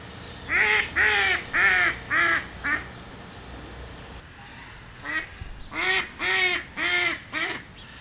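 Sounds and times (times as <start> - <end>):
mallard duck calling: 0.5 - 3.0, 5.0 - 7.9.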